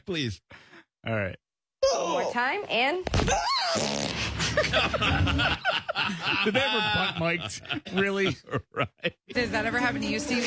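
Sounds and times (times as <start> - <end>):
speech: 0.0 - 10.4
woman forcing out a fart during a chiropractic adjustment: 3.7 - 4.4
laughter: 4.4 - 9.3.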